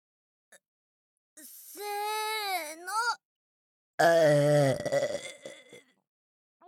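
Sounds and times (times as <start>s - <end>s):
speech: 1.8s - 2.0s, 4.0s - 5.2s
long loud guttural burps: 4.0s - 5.8s.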